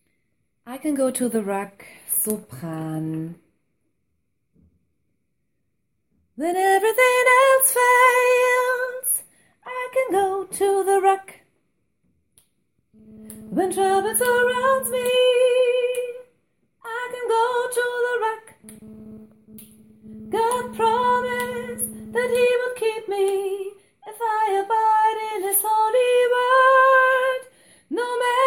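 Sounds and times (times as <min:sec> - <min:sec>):
soprano voice: 0:00.7 - 0:03.4, 0:06.4 - 0:11.4, 0:13.3 - 0:19.1, 0:20.0 - 0:28.4.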